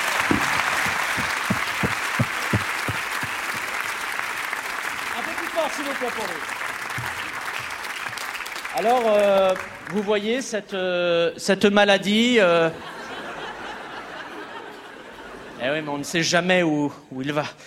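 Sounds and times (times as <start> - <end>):
audience applause at a live comedy evening: 0.0 - 10.0
speech: 5.8 - 6.6, 8.8 - 12.9, 15.6 - 17.6.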